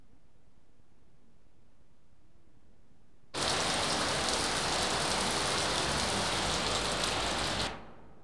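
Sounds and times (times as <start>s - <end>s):
steady rain: 3.4s - 7.7s.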